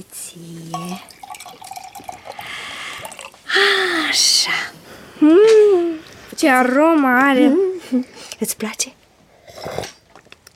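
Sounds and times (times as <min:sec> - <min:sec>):
speech: 0:00.0 - 0:01.1, 0:04.1 - 0:05.4, 0:06.4 - 0:09.0
hot tea being poured into cups: 0:00.5 - 0:03.5.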